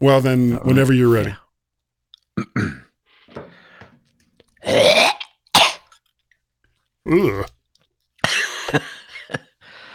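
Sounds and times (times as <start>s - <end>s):
speech: 0.0s - 1.4s, 2.4s - 2.8s, 4.6s - 5.1s, 7.1s - 7.6s, 8.7s - 9.4s
throat clearing: 2.4s - 3.0s.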